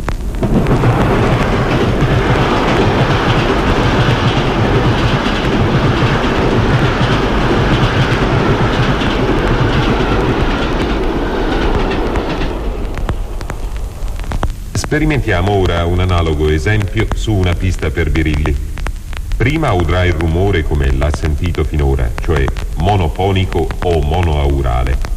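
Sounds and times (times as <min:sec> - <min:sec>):
train passing by: 0:00.1 - 0:18.8, 0:19.4 - 0:25.0
speech: 0:14.9 - 0:18.7, 0:19.4 - 0:25.1.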